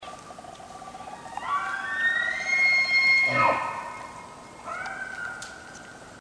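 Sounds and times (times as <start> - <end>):
elk locator bugle call: 2.1 - 5.4.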